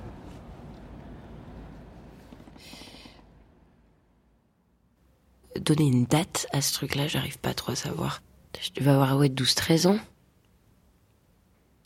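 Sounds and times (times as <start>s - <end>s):
large four-deck passenger transport boat engine rumbling on the water: 0.0s - 4.3s
speech: 5.6s - 10.1s.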